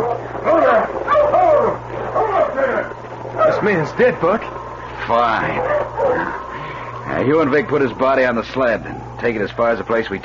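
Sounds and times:
steady low hum: 0:00.0 - 0:10.2
speech: 0:03.6 - 0:05.8, 0:07.2 - 0:10.2
sled team dog giving drawn-out wavering barks: 0:05.4 - 0:06.4.

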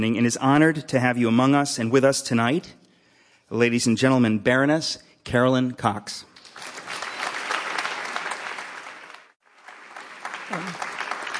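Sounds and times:
speech: 0:00.0 - 0:02.8, 0:03.5 - 0:06.3
audience applause welcoming a speaker at an evening talk: 0:06.5 - 0:11.3.

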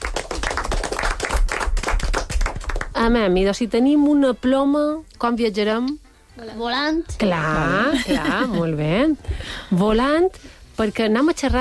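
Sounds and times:
group of children clapping for a correct answer in a classroom game: 0:00.0 - 0:03.0
speech: 0:03.0 - 0:11.5.

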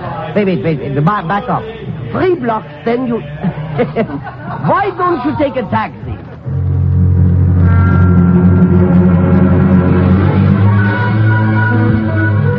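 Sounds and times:
speech: 0:00.4 - 0:06.1
laughter: 0:01.7 - 0:06.5
car engine humming as the car drives and pulls up: 0:06.4 - 0:12.5.

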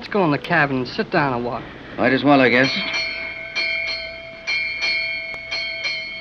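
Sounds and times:
ship's bell striking aboard a sailing boat: 0:00.0 - 0:06.1
speech: 0:00.1 - 0:03.0.

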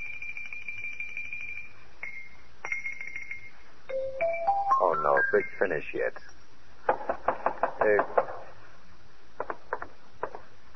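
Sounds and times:
low hum: 0:00.0 - 0:10.7
xylophone notes from next door: 0:02.0 - 0:05.6
speech: 0:05.3 - 0:06.4, 0:07.8 - 0:08.2.

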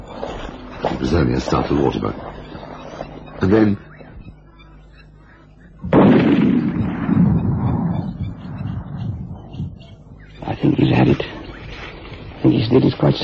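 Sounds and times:
faint sounds from the surroundings in thick bush: 0:00.0 - 0:13.2
speech: 0:01.0 - 0:02.3, 0:03.4 - 0:03.9, 0:10.6 - 0:11.3, 0:12.7 - 0:13.2
heavy burst of noise: 0:05.8 - 0:10.2
loud gunshot during a hunt in thick bush: 0:05.9 - 0:08.1.

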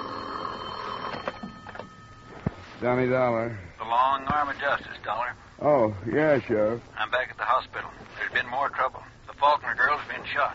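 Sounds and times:
telephone ringing by a bed: 0:00.0 - 0:02.8
faint steady hum: 0:00.0 - 0:10.5
speech: 0:02.8 - 0:10.5.

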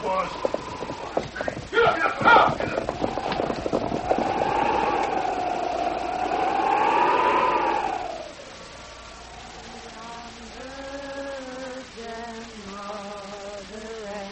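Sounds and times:
rapid clatter of hooves: 0:00.0 - 0:06.6
horses galloping: 0:00.0 - 0:12.5.

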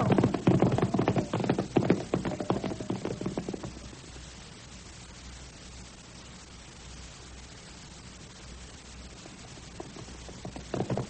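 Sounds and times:
horses' hooves clip-clopping: 0:00.0 - 0:04.1, 0:09.2 - 0:11.0.

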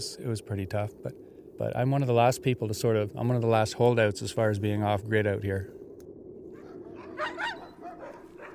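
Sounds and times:
speech: 0:00.0 - 0:05.8
steady low rumble: 0:00.0 - 0:08.5
working huskies barking and yipping by a cabin in the woods: 0:06.5 - 0:08.5.

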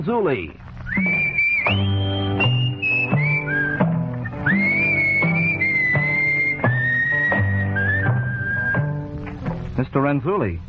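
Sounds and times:
speech: 0:00.0 - 0:02.0, 0:09.8 - 0:10.6
person whistling a tune: 0:00.9 - 0:09.0.

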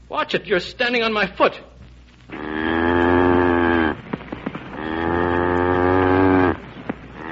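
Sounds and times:
speech: 0:00.1 - 0:01.7
cattle lowing inside a railroad freight car: 0:02.3 - 0:04.0, 0:04.8 - 0:06.6, 0:07.2 - 0:07.3.

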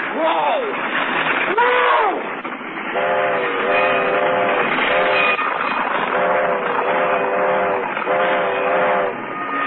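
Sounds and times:
train rumbling past: 0:00.0 - 0:09.6
train horn blasts: 0:02.9 - 0:09.6.

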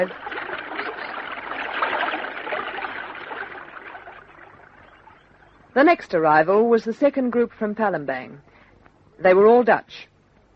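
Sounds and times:
speech: 0:00.0 - 0:00.3, 0:05.8 - 0:08.5, 0:09.2 - 0:10.1
creek water flowing over stones: 0:00.0 - 0:05.1.

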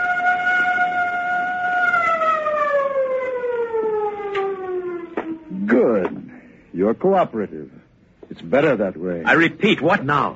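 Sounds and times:
civil defense siren wailing: 0:00.0 - 0:06.1
faint noise: 0:00.0 - 0:10.3
speech: 0:06.8 - 0:10.3.

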